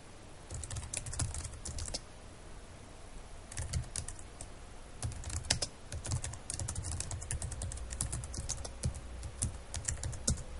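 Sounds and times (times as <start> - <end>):
typing on a computer keyboard: 0.5 - 2.0, 3.5 - 4.3, 5.0 - 10.4.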